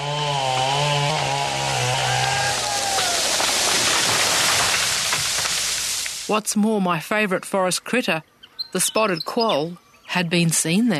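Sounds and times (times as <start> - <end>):
chainsaw cutting trees: 0.0 - 5.8
speech: 6.3 - 10.9.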